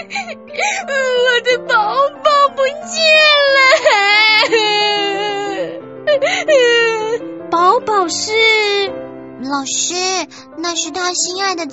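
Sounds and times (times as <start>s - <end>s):
young girl crying and wailing loudly over a lost pet silkworm: 0.0s - 8.9s
speech: 0.3s - 2.0s, 8.0s - 11.7s.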